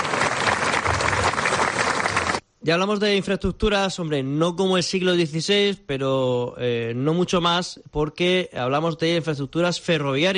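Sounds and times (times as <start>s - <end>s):
crowd applauding at a small village fiesta in Purchena: 0.0s - 2.4s
speech: 2.6s - 10.3s.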